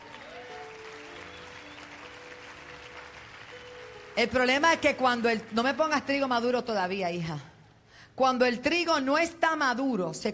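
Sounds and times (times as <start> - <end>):
audience applauding: 0.0 - 6.3
speech: 4.2 - 7.5, 8.2 - 10.3.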